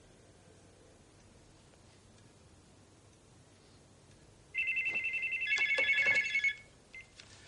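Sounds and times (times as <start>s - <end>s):
telephone ringing with a sharp warbling electronic trill: 4.5s - 7.1s.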